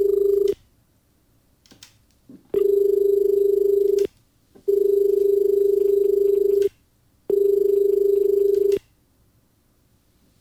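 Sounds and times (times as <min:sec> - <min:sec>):
electronic ringing of an incoming phone call: 0:00.0 - 0:00.6, 0:02.6 - 0:04.1, 0:04.7 - 0:06.7, 0:07.3 - 0:08.8.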